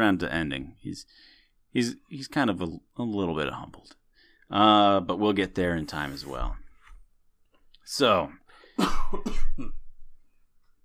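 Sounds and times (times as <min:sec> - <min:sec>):
speech: 0:00.0 - 0:06.6, 0:07.9 - 0:09.8
person coughing in harsh throaty bursts: 0:08.6 - 0:10.0.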